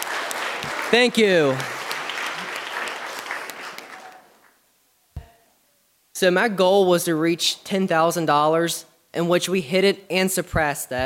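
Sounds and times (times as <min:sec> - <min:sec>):
audience applause at a fundraiser: 0:00.0 - 0:04.5
speech: 0:00.6 - 0:01.7, 0:06.2 - 0:11.0.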